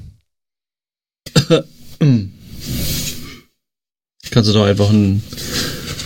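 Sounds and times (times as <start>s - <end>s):
person clearing throat: 1.3s - 2.3s
speech: 1.5s - 2.3s, 4.4s - 5.6s.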